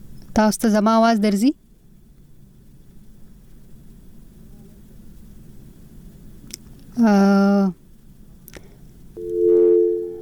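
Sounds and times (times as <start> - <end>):
low hiss: 0.0 - 10.2
speech: 0.4 - 1.6, 7.0 - 7.8
busy tone on a telephone line that has just been cut off: 9.2 - 10.2.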